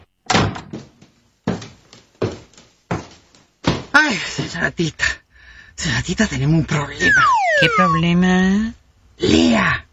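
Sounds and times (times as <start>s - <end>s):
wooden door thumps and rattles: 0.3s - 1.0s
speech: 4.1s - 5.2s, 5.8s - 9.9s.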